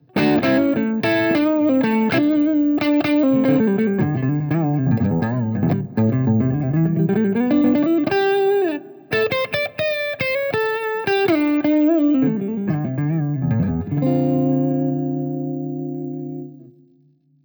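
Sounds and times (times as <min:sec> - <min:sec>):
crunchy electric guitar on neck pickup: 0:00.0 - 0:17.1.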